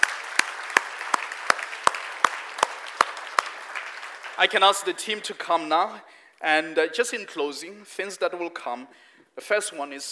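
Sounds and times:
audience clapping in rhythmic unison: 0:00.0 - 0:05.4
speech: 0:04.4 - 0:10.0.

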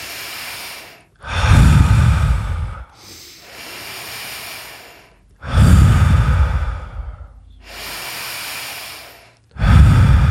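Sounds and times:
slow deep circular breathing through the nose: 0:00.0 - 0:10.2.

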